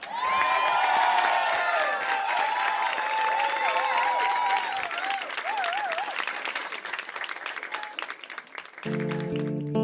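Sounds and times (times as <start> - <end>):
high wavering cheers: 0.0 - 6.4
audience applauding: 0.0 - 9.7.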